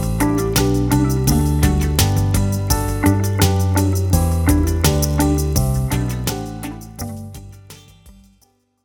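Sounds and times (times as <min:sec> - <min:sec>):
G major scale: 0:00.1 - 0:07.3.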